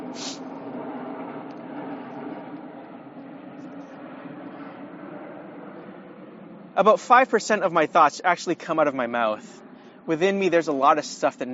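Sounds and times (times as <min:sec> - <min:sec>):
airplane passing overhead: 0:00.0 - 0:11.5
speech: 0:06.8 - 0:11.5.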